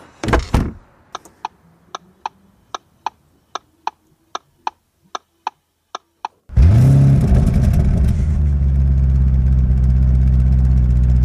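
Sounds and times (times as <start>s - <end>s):
thud: 0.2s - 0.8s
sharp ticking clicks: 1.1s - 6.5s
V8 car engine firing up and revving: 6.5s - 11.2s.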